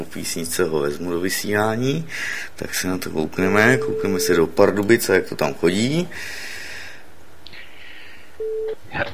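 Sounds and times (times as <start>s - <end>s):
speech: 0.1s - 6.5s, 8.9s - 9.1s
telephone ringback tone: 8.4s - 8.8s.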